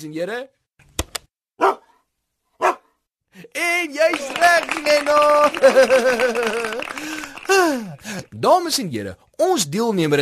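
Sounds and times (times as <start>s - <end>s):
speech: 0.0s - 0.6s, 3.4s - 10.2s
sharp clicks: 0.8s - 1.3s
dog barking: 1.6s - 3.0s
laughter: 3.6s - 8.4s.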